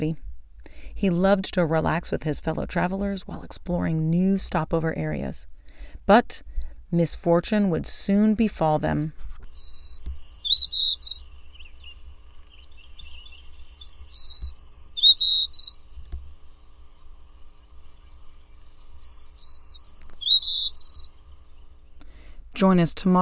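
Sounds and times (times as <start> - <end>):
speech: 0.0 - 0.2, 1.0 - 5.5, 6.1 - 9.2, 22.6 - 23.2
faint low rumble: 0.0 - 23.2
bird singing high-pitched chirping phrases: 9.5 - 22.2.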